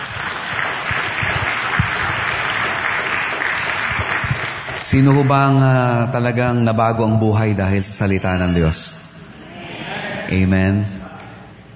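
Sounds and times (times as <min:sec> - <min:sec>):
congregation applauding in a church: 0:00.0 - 0:06.0
speech: 0:04.8 - 0:09.0, 0:10.3 - 0:11.0.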